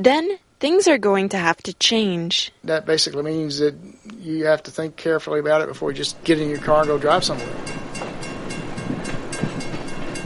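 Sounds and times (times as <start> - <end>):
speech: 0.0 - 7.8
train passing sound effect: 2.7 - 10.2
train wheels clicking over rail joints: 6.2 - 10.2.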